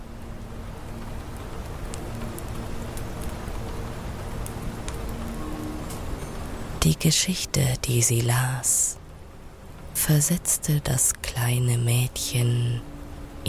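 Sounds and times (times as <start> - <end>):
rain and snow pattering on a glass roof: 0.0 - 13.4
speech: 6.8 - 9.0, 10.0 - 13.4.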